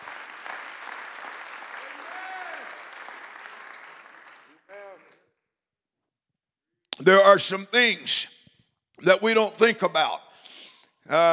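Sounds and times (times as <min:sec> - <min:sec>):
audience clapping hands in applause: 0:00.0 - 0:05.2
speech: 0:07.0 - 0:08.4, 0:09.0 - 0:10.2, 0:11.1 - 0:11.3.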